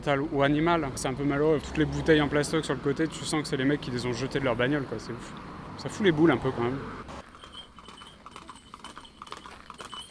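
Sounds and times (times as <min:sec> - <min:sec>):
speech: 0:00.0 - 0:07.2
horse hooves clip-clopping as tourists ride horses: 0:07.2 - 0:10.0.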